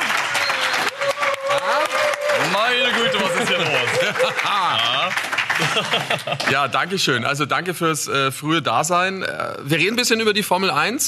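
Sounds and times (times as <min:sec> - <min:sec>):
live audience applause: 0:00.0 - 0:06.9
audience whistles: 0:00.4 - 0:00.9
audience shouts: 0:00.5 - 0:04.2
laughter: 0:02.4 - 0:06.7
speech: 0:05.8 - 0:11.0.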